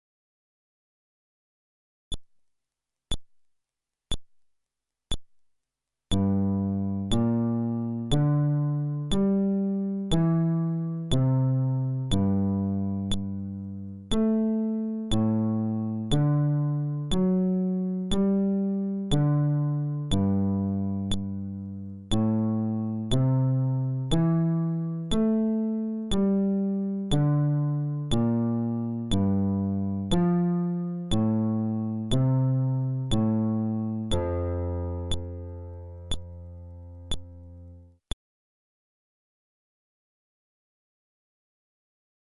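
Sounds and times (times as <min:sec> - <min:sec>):
fretless bass arpeggio: 0:06.1 - 0:37.7.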